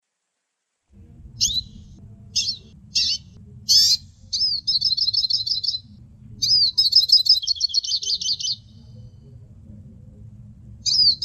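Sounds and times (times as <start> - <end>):
faint low background noise: 0.0 - 11.2
hooded siskin short high buzzy chirps: 1.4 - 9.0, 10.8 - 11.2.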